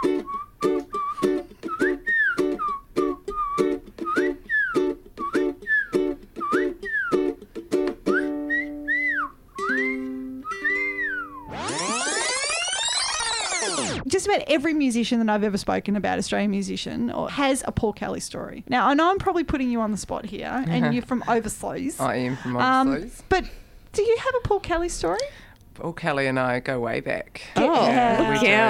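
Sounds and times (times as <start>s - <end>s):
person whistling a tune drunkenly: 0.0s - 7.4s, 8.1s - 11.5s
bright rising swell of tones: 11.4s - 14.0s
speech: 14.4s - 28.6s.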